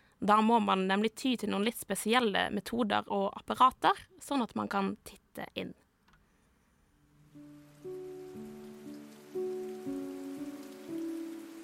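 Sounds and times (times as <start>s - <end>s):
speech: 0.2s - 5.8s
slow sequence of sustained musical notes: 7.0s - 11.6s
steady rain: 7.1s - 11.6s.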